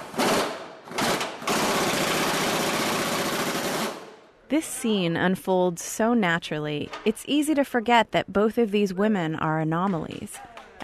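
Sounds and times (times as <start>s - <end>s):
electric impact gun running: 0.2s - 4.0s
speech: 4.5s - 10.8s.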